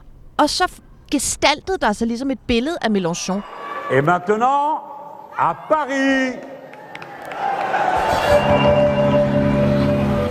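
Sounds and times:
speech: 0:00.4 - 0:06.5, 0:08.3 - 0:08.7
large crowd shouting and cheering at a political rally: 0:03.4 - 0:10.3.

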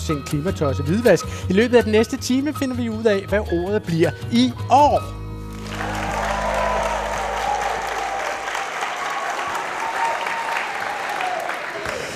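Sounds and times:
speech: 0:00.0 - 0:05.2
large audience applauding in a school hall for a festive occasion: 0:05.5 - 0:12.1.

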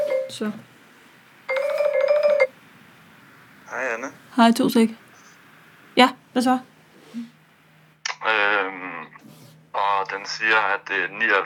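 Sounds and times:
phone ringing with electronic warbling tones: 0:00.0 - 0:00.5, 0:01.5 - 0:02.6
speech: 0:00.3 - 0:00.7, 0:03.7 - 0:05.0, 0:06.0 - 0:07.4, 0:08.2 - 0:08.9, 0:09.8 - 0:11.4.

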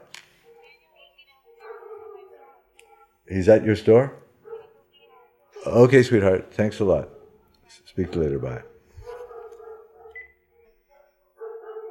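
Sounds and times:
neighbor's dogs barking and yelping: 0:01.6 - 0:03.2, 0:04.4 - 0:04.9, 0:08.0 - 0:10.4, 0:11.3 - 0:11.9
speech: 0:03.3 - 0:04.2, 0:05.7 - 0:07.2, 0:08.0 - 0:08.7.

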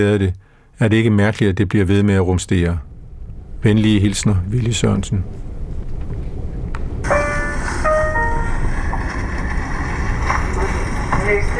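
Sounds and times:
speech: 0:00.0 - 0:02.9, 0:03.6 - 0:05.4
train rolling into a station with a loud steady low rumble: 0:06.3 - 0:11.5.

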